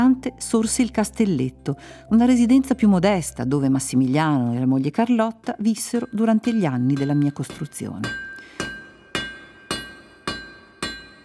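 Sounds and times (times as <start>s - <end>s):
speech: 0.2s - 8.3s
hammer blows striking a metal chisel: 5.7s - 11.2s.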